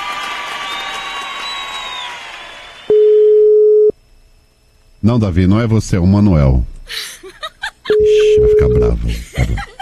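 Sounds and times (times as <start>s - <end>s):
crowd cheering: 0.0s - 3.0s
telephone call tone while waiting for an answer: 2.9s - 3.9s, 8.0s - 9.0s
speech: 5.0s - 7.2s, 8.0s - 9.7s
laughter: 7.0s - 9.8s.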